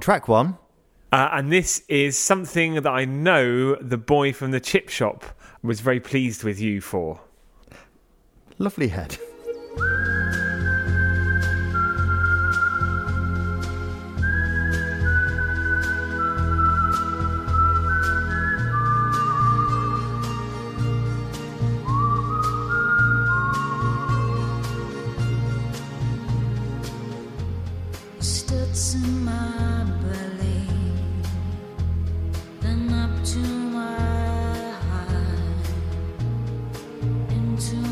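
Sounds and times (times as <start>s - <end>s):
speech: 0.0s - 7.3s, 8.6s - 10.0s
whistled melody in a song intro: 9.1s - 25.8s
rhythmic instrumental backing with deep bass pulses: 9.2s - 37.9s.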